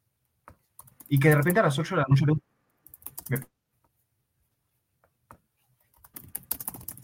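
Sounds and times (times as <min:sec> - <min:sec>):
rapid clicking of typing a message on a keyboard: 0:00.8 - 0:01.6, 0:02.8 - 0:03.5, 0:05.9 - 0:07.0
speech: 0:01.1 - 0:02.5, 0:03.3 - 0:03.5.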